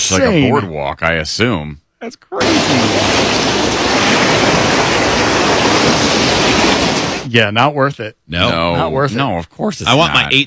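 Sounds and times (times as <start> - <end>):
speech: 0.1 - 4.4, 7.3 - 10.4
loud roar of rushing water: 2.4 - 7.3.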